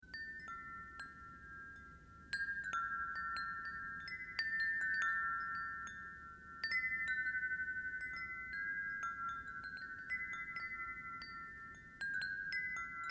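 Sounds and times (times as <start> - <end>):
medallion chime: 0.0 - 13.0.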